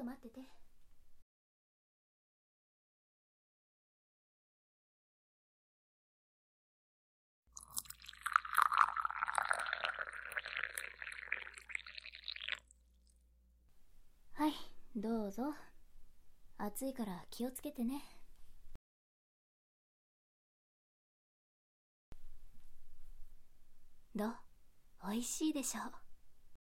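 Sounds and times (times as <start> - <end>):
speech: 0.0 - 0.7, 14.4 - 15.7, 16.6 - 18.2, 24.2 - 24.4, 25.1 - 26.0
hot water pouring from a kettle: 7.6 - 12.7.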